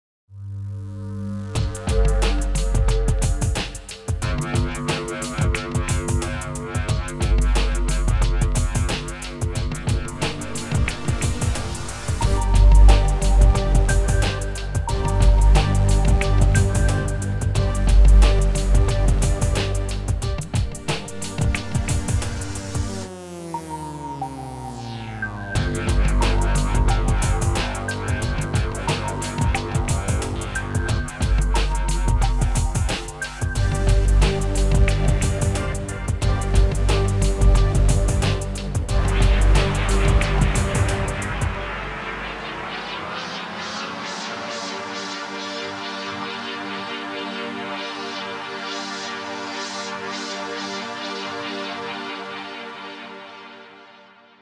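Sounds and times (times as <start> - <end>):
nasty dub music: 1.4 - 53.3.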